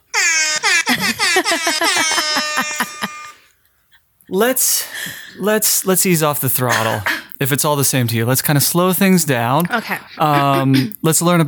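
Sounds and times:
brassy celebration music effect with pulsing horn-like notes: 0.0s - 3.5s
laughter: 0.2s - 3.5s, 9.7s - 11.1s
speech: 4.3s - 11.4s.

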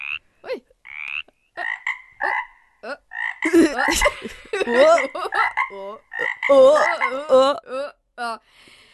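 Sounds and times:
frog croaking in raspy bursts: 0.0s - 0.2s, 0.8s - 3.6s, 5.3s - 7.1s
laughter: 3.4s - 7.4s
speech: 3.5s - 8.7s.

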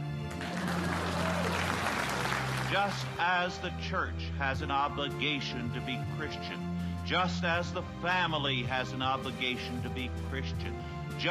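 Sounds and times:
crowd applauding: 0.0s - 3.4s
speech: 2.7s - 11.2s.

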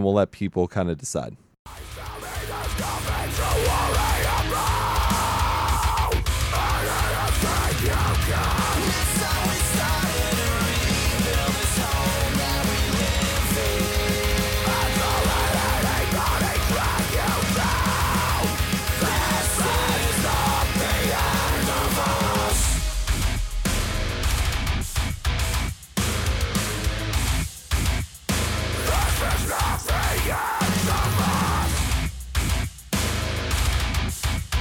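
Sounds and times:
speech: 0.0s - 1.9s
heavy metal track with distorted guitars and driving drums: 1.7s - 34.6s
harsh screamed vocals: 1.8s - 23.3s, 28.8s - 32.0s.

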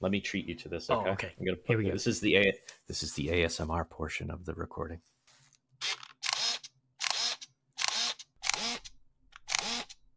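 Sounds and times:
speech: 0.0s - 5.2s
Contax G1 camera shutter clicking: 5.8s - 10.0s.

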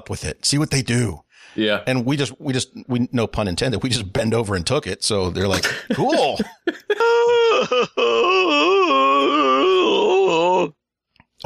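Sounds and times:
speech: 0.0s - 8.6s
laughter: 5.5s - 8.4s
pained groaning moan from a single voice: 7.0s - 10.8s.

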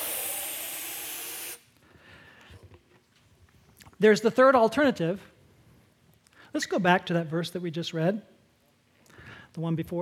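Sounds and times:
air hissing out of a punctured balloon: 0.0s - 1.7s
speech: 4.0s - 5.3s, 6.5s - 8.3s, 9.6s - 10.0s.

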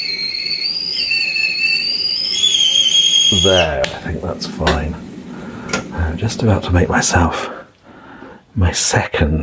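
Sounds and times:
kettle whistling as it comes to the boil: 0.0s - 7.3s
speech: 3.3s - 5.1s, 6.1s - 7.6s, 8.6s - 9.4s.

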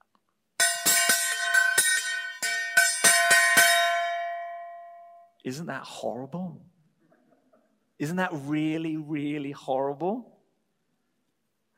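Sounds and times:
metallic clanging of a gong or cymbal: 0.6s - 5.3s
speech: 5.4s - 6.8s, 8.0s - 10.4s.

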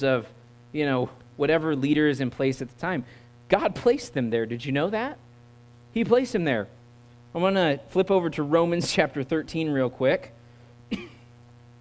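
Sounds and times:
speech: 0.0s - 5.2s, 6.0s - 11.1s
person coughing: 10.9s - 11.4s.

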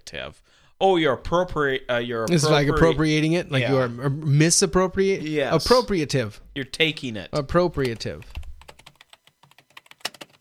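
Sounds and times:
speech: 0.1s - 8.4s
typing on an old computer keyboard: 7.8s - 10.4s.

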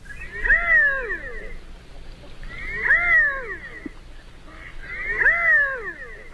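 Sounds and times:
redhead duck calling with drawn-out mewing notes: 0.2s - 1.6s, 2.3s - 6.3s.

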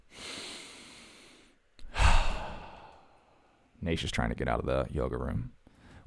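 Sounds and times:
deep breath: 0.0s - 3.7s, 5.7s - 6.0s
speech: 3.8s - 6.0s.

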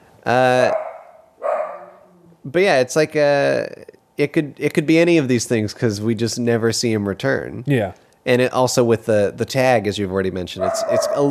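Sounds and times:
speech: 0.2s - 0.8s, 2.4s - 11.2s
dog barking: 0.7s - 2.1s, 10.6s - 11.2s.

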